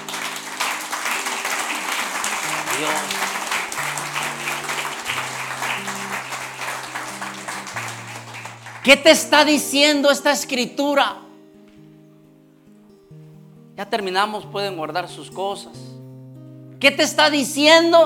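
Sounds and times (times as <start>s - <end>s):
crowd applauding after a scripture reading: 0.0s - 9.3s
sustained keyboard chords: 0.0s - 18.0s
speech: 8.9s - 11.2s, 13.9s - 15.9s, 16.8s - 18.0s.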